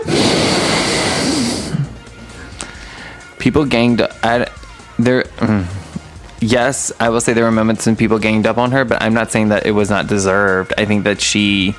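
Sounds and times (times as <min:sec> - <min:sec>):
loud rushing exhale into the microphone: 0:00.0 - 0:03.3
speech: 0:03.4 - 0:05.8, 0:06.4 - 0:11.7.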